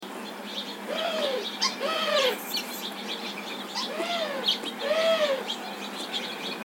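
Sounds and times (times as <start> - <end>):
Eurasian collared-dove alarm call: 0.5 - 6.6.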